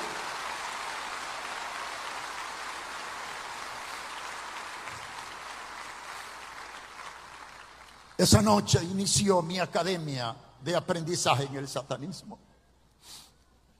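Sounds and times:
audience applauding: 0.0 - 8.4
speech: 8.2 - 12.5.

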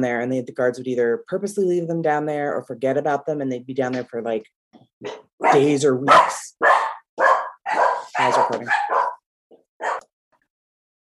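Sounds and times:
speech: 0.0 - 6.8, 8.2 - 9.0
dogs barking at door delivery: 5.0 - 9.2, 9.8 - 10.1.

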